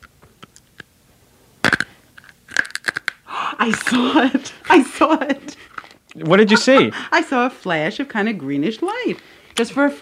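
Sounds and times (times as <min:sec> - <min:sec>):
crunching of something hard being chewed in mouth: 0:00.0 - 0:00.9, 0:01.6 - 0:03.3
speech: 0:03.6 - 0:10.0.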